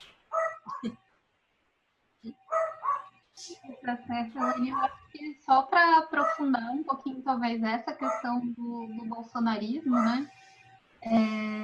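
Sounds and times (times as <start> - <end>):
dog barking: 0.3 - 0.9, 2.5 - 3.1, 4.4 - 5.0, 6.2 - 6.5, 8.0 - 8.3, 9.9 - 10.3
speech: 0.8 - 1.0, 3.4 - 10.4, 11.0 - 11.6.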